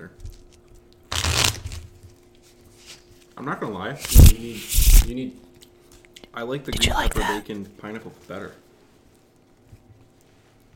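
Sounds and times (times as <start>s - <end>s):
playing cards being riffle shuffled and bridged: 1.1s - 1.8s, 4.0s - 5.1s
speech: 3.4s - 5.4s, 6.4s - 8.6s.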